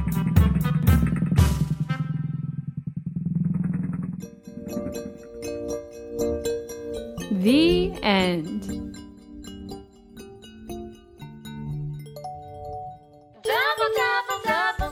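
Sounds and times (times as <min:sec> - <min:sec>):
small motor scooter engine sputtering and revving: 0:00.0 - 0:05.5
light tinkling tune: 0:05.1 - 0:14.9
speech: 0:07.4 - 0:08.8.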